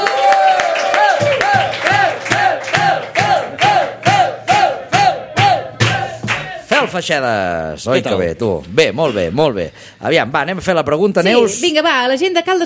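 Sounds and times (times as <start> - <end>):
audience cheering and shouting: 0.0 - 6.6
large audience clapping in rhythmic unison: 0.0 - 6.6
speech: 6.9 - 12.6.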